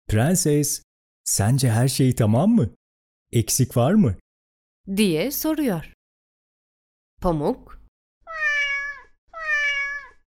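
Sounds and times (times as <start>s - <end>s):
speech: 0.1s - 4.2s, 4.8s - 6.0s, 7.2s - 7.8s
cat meowing: 8.3s - 10.2s.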